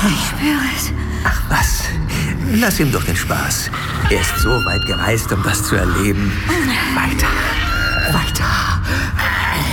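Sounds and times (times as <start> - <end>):
speech: 0.0 - 9.6
cat screeching: 4.1 - 8.5.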